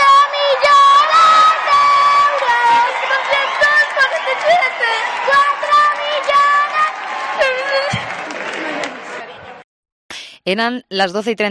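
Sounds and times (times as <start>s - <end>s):
girls singing high-pitched calls: 0.0s - 8.0s
crowd cheering and shouting at a lottery shop for a Christmas lottery jackpot win: 0.0s - 9.6s
speech: 10.5s - 11.4s.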